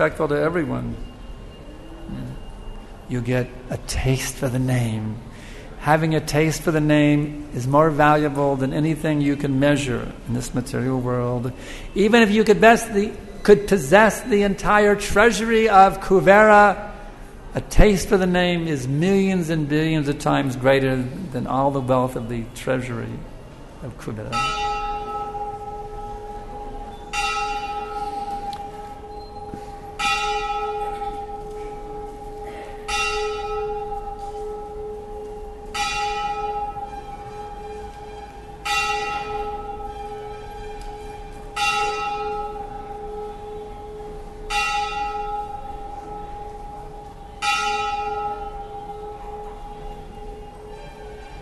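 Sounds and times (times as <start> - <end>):
speech: 0.0 - 1.1, 2.1 - 2.4, 3.1 - 16.9, 17.5 - 24.9
large temple bell ringing: 0.0 - 22.9, 24.2 - 51.4.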